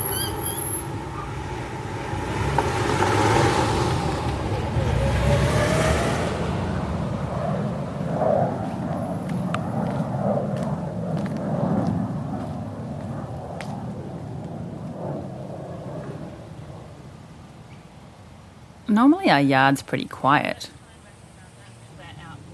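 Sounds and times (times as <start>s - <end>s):
vehicle passing: 0.0s - 16.8s
road traffic rumble heard in a backyard: 0.0s - 22.5s
speech: 19.0s - 20.8s.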